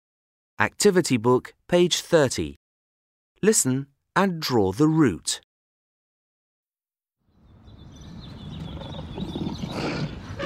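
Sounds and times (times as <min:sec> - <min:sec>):
speech: 0:00.6 - 0:02.6, 0:03.4 - 0:05.5
faint bird chirps: 0:07.3 - 0:10.4
zoo animals roaring in a rough growling rumble: 0:08.4 - 0:10.4.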